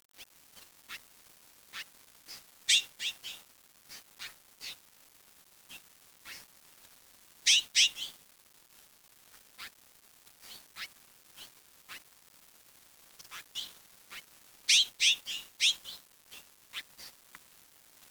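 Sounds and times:
sharp bird chirps: 0:02.7 - 0:04.8, 0:07.5 - 0:08.2, 0:13.3 - 0:16.4.

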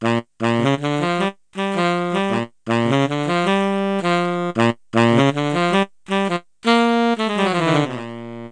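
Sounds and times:
saxophone: 0:00.0 - 0:08.5.

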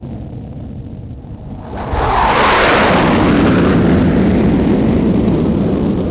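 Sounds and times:
jet flying by: 0:01.2 - 0:06.0.

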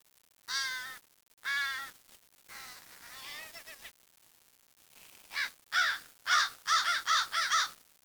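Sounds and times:
bird giving loud harsh hoarse caws: 0:00.5 - 0:01.9, 0:05.4 - 0:08.0.

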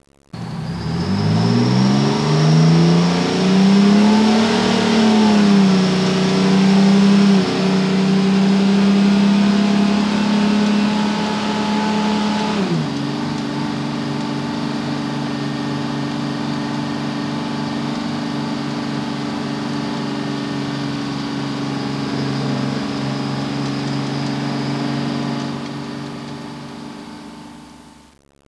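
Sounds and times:
vehicle accelerating: 0:00.3 - 0:28.0
fire burning in a disaster: 0:00.3 - 0:28.1.

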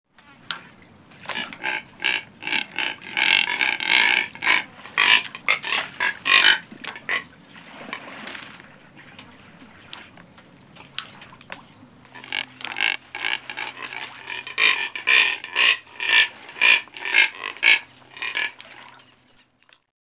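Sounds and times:
Neotropic cormorant giving rough piglike grunts: 0:01.3 - 0:07.3, 0:12.2 - 0:18.6.

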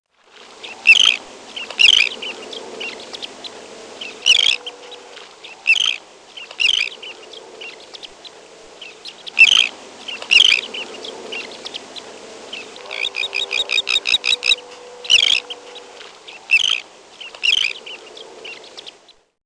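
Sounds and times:
low hum: 0:00.7 - 0:16.7
Elegant tern giving harsh grating calls: 0:00.8 - 0:03.0, 0:04.0 - 0:06.0, 0:06.6 - 0:07.1, 0:08.8 - 0:18.0.

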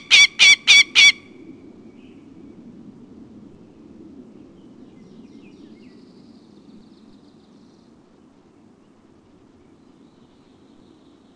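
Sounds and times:
Northern goshawk harsh kak calls: 0:00.0 - 0:01.2.

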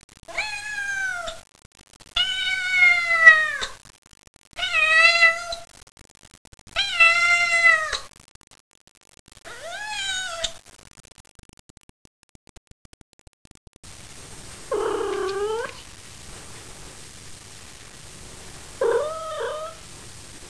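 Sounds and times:
cat: 0:00.2 - 0:01.4, 0:02.1 - 0:03.8, 0:04.5 - 0:05.7, 0:06.7 - 0:08.1, 0:09.4 - 0:10.6, 0:14.7 - 0:15.9, 0:18.8 - 0:19.8.

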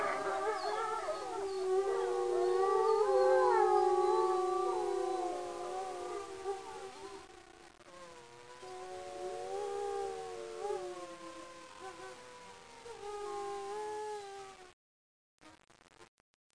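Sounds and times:
wolf chorus of overlapping howls: 0:00.0 - 0:07.4, 0:08.6 - 0:11.8.

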